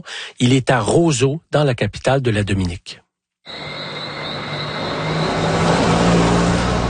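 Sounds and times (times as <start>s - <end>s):
speech: 0.0s - 3.8s
car engine droning on a steep road to Soufrière in southern Dominica: 3.5s - 6.8s
road rumble: 3.5s - 6.8s.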